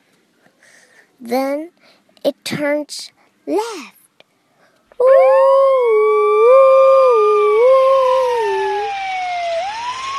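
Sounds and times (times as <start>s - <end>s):
speech: 1.2s - 4.0s, 5.0s - 6.8s
fire truck siren wailing as the truck speeds out of a firehouse: 5.0s - 10.1s.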